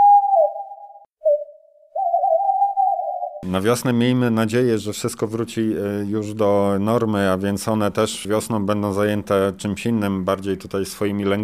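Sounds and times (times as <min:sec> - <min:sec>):
owl hooting in a willow tree: 0:00.0 - 0:03.4
speech: 0:03.4 - 0:11.4.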